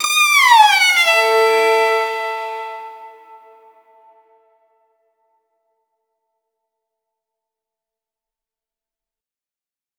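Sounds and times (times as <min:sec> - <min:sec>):
violin pluck: 0:00.0 - 0:03.7.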